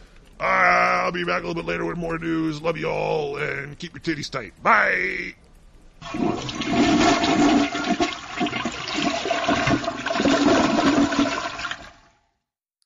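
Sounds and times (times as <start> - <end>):
speech: 1.1 - 6.8
toilet flushing: 6.0 - 12.2.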